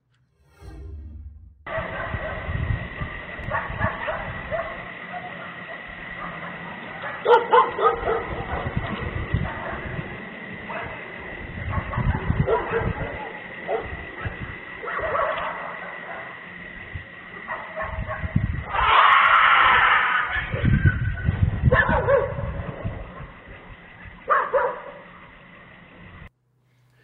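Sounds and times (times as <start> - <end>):
dogs barking: 1.7 - 2.6, 3.4 - 25.2
sharp scream: 18.6 - 21.2.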